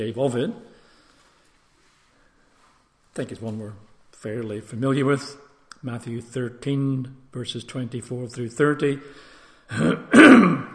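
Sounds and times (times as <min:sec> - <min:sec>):
speech: 0:00.0 - 0:00.7, 0:03.2 - 0:10.7
person clearing throat: 0:09.7 - 0:10.7.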